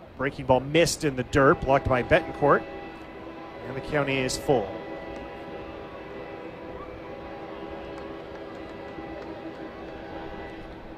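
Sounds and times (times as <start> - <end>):
train rumbling past on tracks beside a ballpark: 0.0 - 10.9
speech: 0.2 - 2.8, 3.6 - 4.8.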